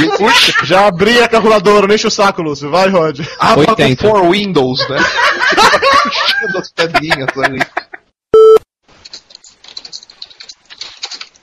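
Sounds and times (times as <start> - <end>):
laughter: 0.0 - 1.8, 4.6 - 8.0
speech: 0.0 - 7.8
typing hard on a computer keyboard: 9.0 - 11.4.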